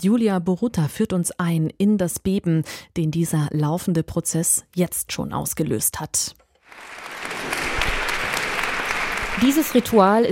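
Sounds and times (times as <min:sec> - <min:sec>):
speech: 0:00.0 - 0:07.3, 0:09.4 - 0:10.2
crowd applause for a woman arriving at a courthouse: 0:06.7 - 0:10.2.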